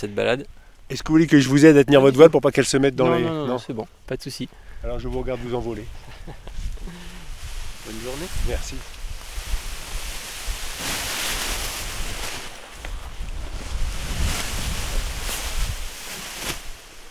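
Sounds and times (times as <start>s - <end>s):
speech: 0.0s - 7.0s, 7.8s - 9.0s
strong wind buffeting microphone at a mountain launch site: 4.8s - 10.8s, 12.9s - 16.0s.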